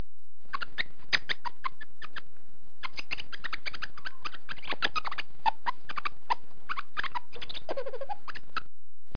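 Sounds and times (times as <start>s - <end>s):
lemur clicking calls: 0.5s - 2.2s, 2.8s - 8.7s.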